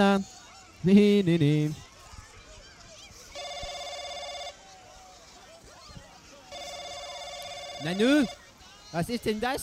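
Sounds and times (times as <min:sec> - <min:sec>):
speech: 0:00.0 - 0:01.8, 0:07.8 - 0:09.6
telephone in a phone booth ringing with electronic trilling: 0:03.4 - 0:04.6, 0:06.5 - 0:08.4.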